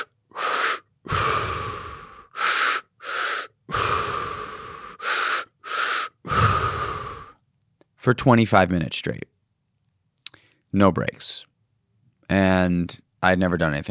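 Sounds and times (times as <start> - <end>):
breath-work breathing in and out through the mouth: 0.0 - 7.4
speech: 8.0 - 9.3, 10.7 - 11.5, 12.3 - 13.8.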